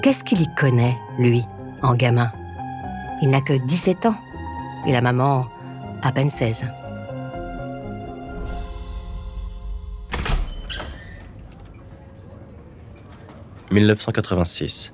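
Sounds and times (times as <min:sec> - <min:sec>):
speech: 0:00.0 - 0:02.4, 0:03.2 - 0:04.2, 0:04.8 - 0:06.8, 0:13.7 - 0:14.9
soft music: 0:00.0 - 0:11.0
office door creak and thud: 0:10.0 - 0:12.0
office door latch click: 0:10.1 - 0:11.3.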